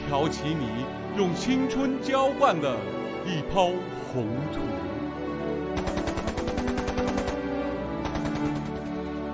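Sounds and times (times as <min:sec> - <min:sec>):
speech: 0:00.1 - 0:04.9
automatic gunfire: 0:05.7 - 0:09.1.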